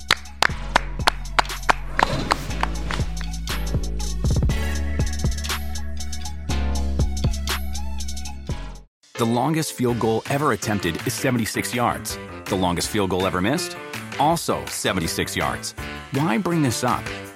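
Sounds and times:
sharp rhythmic hand claps: 0.0s - 3.7s
bright musical backing: 0.0s - 17.3s
speech: 9.2s - 17.2s.

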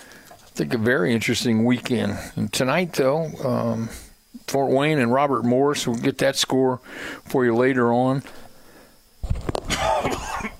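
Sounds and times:
speech: 0.6s - 8.4s
harsh cough: 9.7s - 10.5s
rough throat-clearing rasp: 9.7s - 10.5s.

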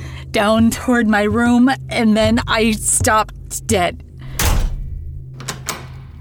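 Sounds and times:
speech: 0.4s - 4.0s
lock being turned from the inside: 4.3s - 6.2s
room door shutting with dull low thud: 4.3s - 6.2s.

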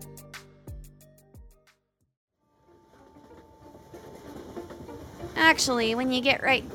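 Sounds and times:
steady rolling roar of a moving train carriage: 2.8s - 6.7s
rhythmic clacks inside a moving train car: 3.2s - 6.7s
speech: 5.4s - 6.7s.

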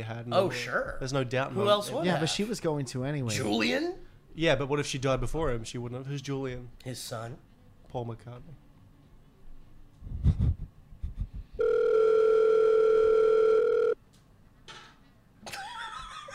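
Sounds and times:
speech: 0.0s - 8.6s, 10.0s - 10.6s
telephone ringing with an electronic tone: 11.6s - 14.0s.

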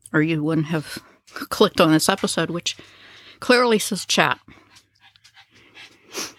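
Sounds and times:
speech: 0.1s - 4.6s
dog panting: 2.1s - 6.3s.

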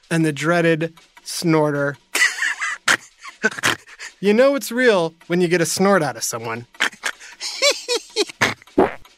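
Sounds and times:
speech: 0.1s - 2.1s, 3.4s - 6.8s
laughter: 2.1s - 4.2s, 6.8s - 8.7s
rough low rasping fart blasts: 8.4s - 9.1s
short squeaky fart noises: 8.4s - 9.1s.

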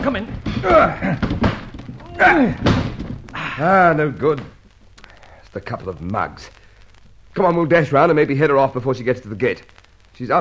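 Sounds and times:
bodies slamming against a locked door: 0.0s - 3.8s
speech: 0.1s - 1.5s, 2.2s - 2.8s, 3.6s - 4.6s, 5.5s - 6.6s, 7.4s - 10.3s
people grunting with strained exertion: 0.4s - 4.3s.

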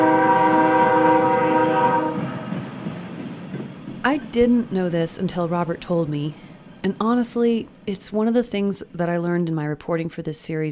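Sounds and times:
steam train horn blaring: 0.0s - 2.8s
steam train engine rumbling: 0.0s - 10.3s
speech: 4.4s - 10.6s.

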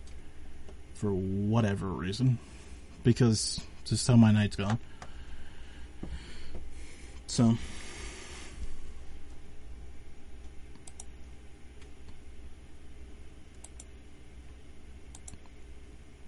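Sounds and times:
steady low hum of noise: 0.0s - 16.2s
speech: 1.0s - 4.9s, 7.3s - 7.8s
clicks on a computer: 10.4s - 11.1s, 13.5s - 13.9s, 15.1s - 15.6s
keystrokes on a computer keyboard: 10.7s - 11.1s, 15.1s - 15.4s.

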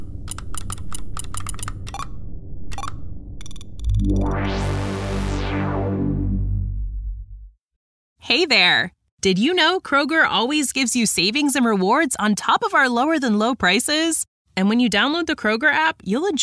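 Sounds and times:
broad rushing sound: 0.0s - 6.9s
computer keyboard typing a password: 0.1s - 2.1s, 2.7s - 4.5s
speech: 8.3s - 16.4s.

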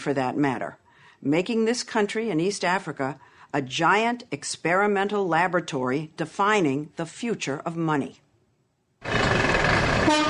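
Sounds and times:
speech: 0.0s - 8.2s, 10.1s - 10.2s
dense traffic noise at a busy bus station in Nairobi Kenya: 9.0s - 10.2s
vehicle horns blaring at a bus station in Nairobi Kenya: 10.0s - 10.2s.

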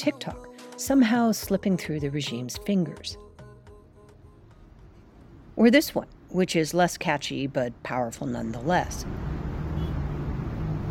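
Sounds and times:
speech: 0.0s - 3.3s, 5.6s - 9.3s
highway traffic roaring: 4.5s - 10.8s.

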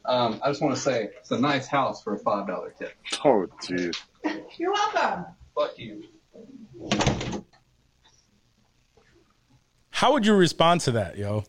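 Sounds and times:
speech: 0.2s - 7.4s, 10.0s - 11.4s
door swinging shut with a loud thump: 6.8s - 7.5s.

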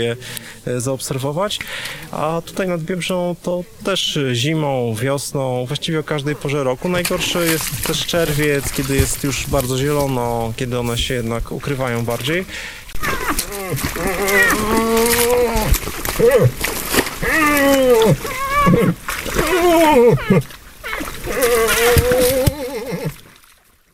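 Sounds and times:
speech: 0.0s - 20.6s
bull moose in rut grunting: 6.2s - 23.2s.

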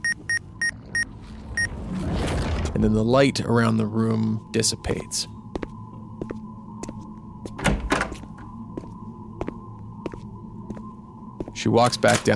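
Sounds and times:
low hum: 0.0s - 11.8s
drawer pulled out of a shop till: 1.3s - 3.0s
speech: 2.8s - 5.4s, 11.6s - 12.3s.

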